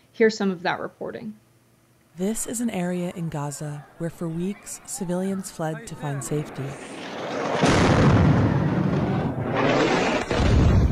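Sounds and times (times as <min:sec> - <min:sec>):
speech: 0:00.2 - 0:01.4, 0:02.2 - 0:08.1
laughter: 0:02.2 - 0:07.6
2,000-pound bomb detonating in Gaza: 0:06.8 - 0:10.9.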